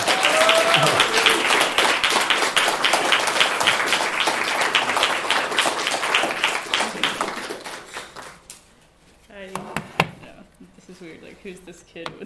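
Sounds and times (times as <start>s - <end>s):
audience applause: 0.0s - 8.4s.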